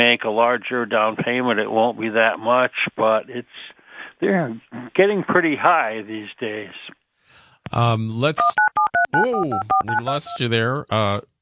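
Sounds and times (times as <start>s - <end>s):
speech: 0.0s - 7.0s, 7.6s - 11.3s
telephone keypad dialing tones: 8.5s - 10.0s.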